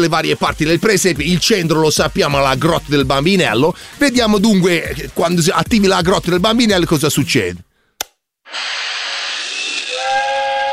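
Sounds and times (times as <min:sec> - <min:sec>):
speech: 0:00.0 - 0:07.7
toy steam train whistle: 0:09.7 - 0:10.7.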